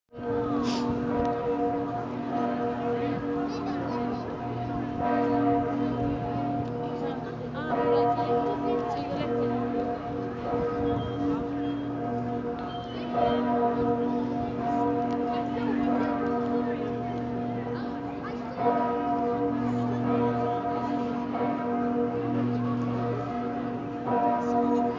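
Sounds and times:
church ambience in San Marco: 0.1 - 24.9.

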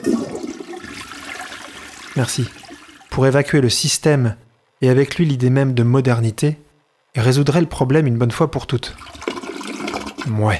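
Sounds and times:
toilet flushing: 0.0 - 3.2, 9.0 - 10.4
speech: 2.2 - 2.6, 3.2 - 6.6, 7.2 - 9.2, 10.2 - 10.5.

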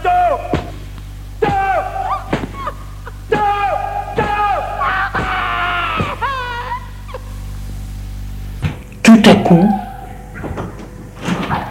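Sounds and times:
faint room hum: 0.0 - 11.6
laughter: 1.4 - 7.6, 11.2 - 11.6
door opening: 8.6 - 11.6.

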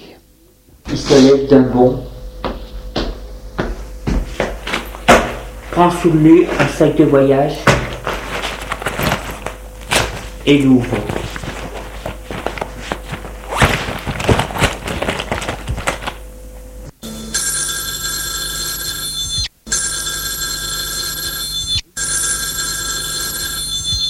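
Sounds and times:
speech: 1.0 - 2.1, 5.8 - 7.7, 10.4 - 11.2
clattering and shuffling: 2.4 - 16.3
telephone bell ringing: 17.0 - 24.0.

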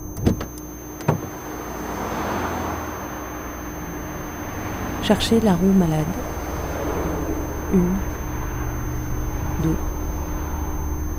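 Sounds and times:
car door clicks on the hard shoulder of a motorway: 0.2 - 1.3
motorway traffic passing at speed: 1.2 - 11.1
speech: 5.1 - 6.3, 7.7 - 8.1, 9.6 - 9.9.

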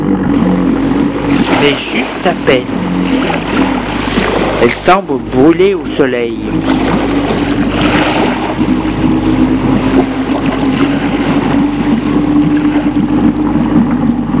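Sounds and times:
boat motor droning: 0.0 - 14.3
faint wash of wind or water: 0.0 - 14.3
speech: 1.6 - 3.6, 4.6 - 7.1.

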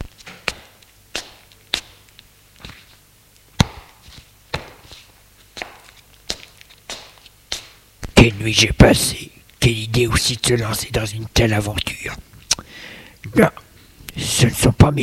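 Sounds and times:
barefoot footsteps on a bedroom floor: 0.0 - 8.3
speech: 8.3 - 12.2, 13.3 - 13.6, 14.2 - 15.0.

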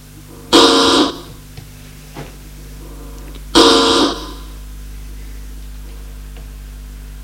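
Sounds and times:
quiet room hum: 0.0 - 7.2
intercom buzzer ringing: 0.3 - 1.4, 2.8 - 4.7.

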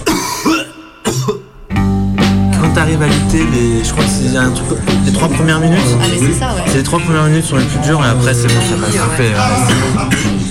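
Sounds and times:
person coughing: 0.0 - 1.6, 9.6 - 10.4
speech: 2.8 - 10.4.

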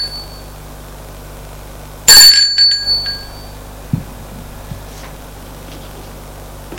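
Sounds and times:
doorbell ding: 2.1 - 3.6
soft thuds: 3.8 - 6.1.

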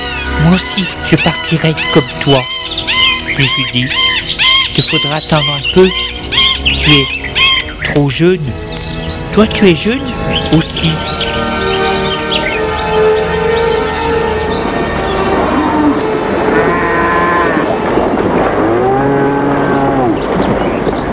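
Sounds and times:
speech: 0.5 - 8.7, 9.3 - 11.1
cows mooing as they are brought into the barn: 10.1 - 20.6.

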